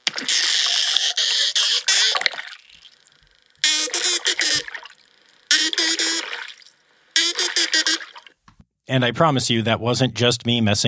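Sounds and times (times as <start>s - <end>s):
dolphin burst pulses underwater: 0.0s - 8.4s
faint watery background: 0.0s - 8.6s
speech: 8.9s - 10.8s.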